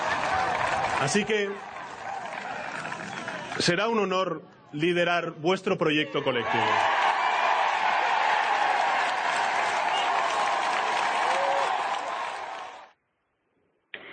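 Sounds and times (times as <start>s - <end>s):
large crowd shouting and cheering at a political rally in Spain: 0.0s - 3.8s, 5.8s - 12.9s
speech: 1.0s - 1.7s, 3.6s - 6.9s.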